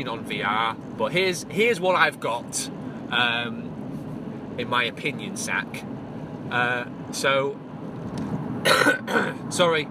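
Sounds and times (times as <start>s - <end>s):
speech: 0.0s - 3.7s, 4.6s - 9.9s
person coughing: 8.6s - 9.4s.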